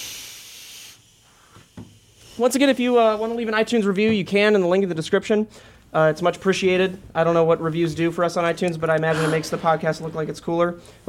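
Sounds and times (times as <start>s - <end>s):
vape being inhaled and exhaled: 0.0s - 2.4s, 9.0s - 10.1s
speech: 2.4s - 11.0s.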